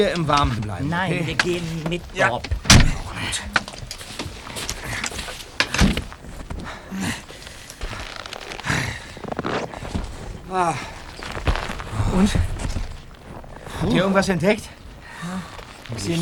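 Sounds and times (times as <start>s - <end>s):
speech: 0.0s - 3.6s, 10.5s - 11.0s, 12.1s - 12.5s, 13.8s - 16.2s
rustling and shuffling as people climb out of a car: 0.0s - 16.2s
car doors of a Beetle stuck in a snowbank opening and thumping shut: 2.5s - 3.2s.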